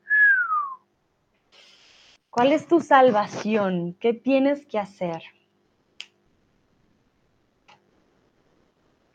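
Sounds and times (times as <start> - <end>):
eerie ghostly whistle sliding downward in pitch: 0.0 - 0.8
speech: 2.4 - 5.4.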